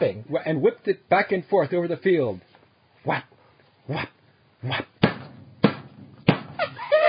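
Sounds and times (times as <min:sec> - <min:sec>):
speech: 0:00.0 - 0:03.3, 0:03.9 - 0:05.2
sharp thumps: 0:04.9 - 0:06.9.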